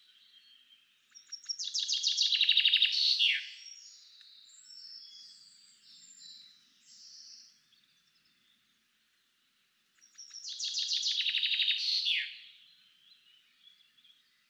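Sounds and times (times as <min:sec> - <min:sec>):
common chaffinch Fringilla coelebs singing: 0:00.0 - 0:08.7, 0:10.0 - 0:14.4.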